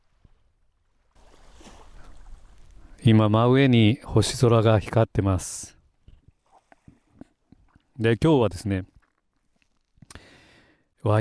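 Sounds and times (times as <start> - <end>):
ocean waves surf rushing: 0.0 - 3.1
speech: 3.1 - 5.8, 8.0 - 8.9.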